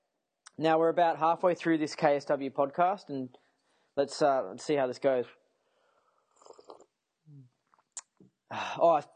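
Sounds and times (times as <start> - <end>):
speech: 0.6 - 3.4, 4.0 - 5.4, 8.5 - 9.1
person slurping hot green tea: 6.3 - 7.0
low gulping swallow: 6.4 - 7.5.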